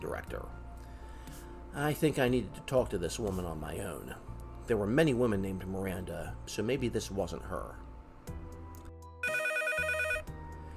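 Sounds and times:
steady low musical background: 0.0 - 10.7
speech: 0.1 - 0.6, 1.3 - 7.9
telephone ringing: 9.2 - 10.4.

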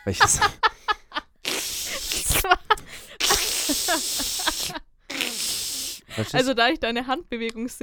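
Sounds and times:
speech: 0.0 - 0.7, 6.2 - 7.8
laughter: 0.0 - 1.4
voice imitating meat sizzling in a hot pan: 1.4 - 6.0.

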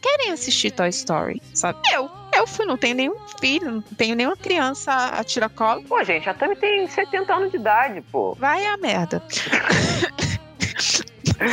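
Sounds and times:
speech: 0.1 - 10.2, 10.8 - 11.5
laughter: 9.3 - 10.2, 10.8 - 11.5
person coughing in short raspy bursts: 9.3 - 11.5
person clearing their throat: 9.4 - 11.5.

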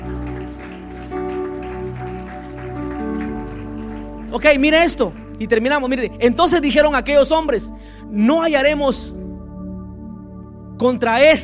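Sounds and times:
audience clapping: 0.0 - 6.0
sustained organ-like keyboard chords: 0.0 - 11.4
speech: 4.3 - 9.2, 10.8 - 11.4.

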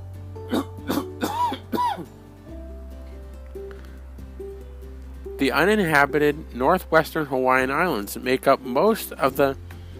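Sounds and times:
raspy allergy coughs: 0.5 - 2.1
speech: 5.4 - 9.7.

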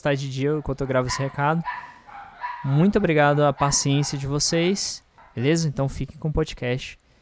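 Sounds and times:
speech: 0.0 - 1.9, 2.6 - 7.0
dogs barking and yipping: 0.4 - 5.6.

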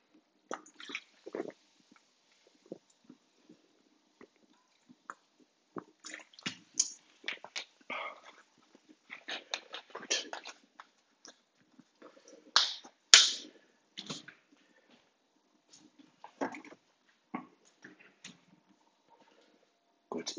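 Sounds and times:
slurps and gulps of drinking water: 0.1 - 12.6, 16.2 - 18.2
person sipping and swallowing water: 0.1 - 14.9, 16.2 - 18.3.

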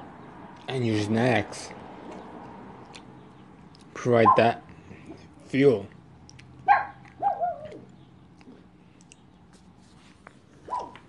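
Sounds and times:
speech: 0.7 - 1.8, 4.0 - 4.6, 5.5 - 6.0
dog barking: 4.2 - 4.5, 6.6 - 7.8, 10.6 - 11.0.

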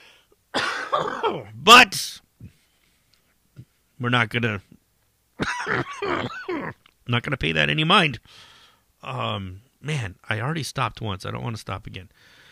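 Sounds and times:
harsh chesty coughing from a lingering cough: 0.5 - 1.5, 5.4 - 6.8
speech: 1.0 - 2.5, 4.0 - 4.8, 5.4 - 12.3.

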